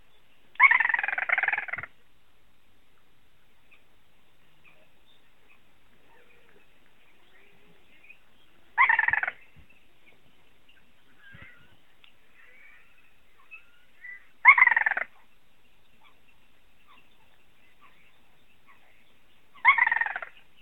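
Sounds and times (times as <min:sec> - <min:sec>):
little crake calling: 0:00.5 - 0:02.0, 0:04.6 - 0:09.7, 0:11.0 - 0:15.3, 0:16.8 - 0:20.5.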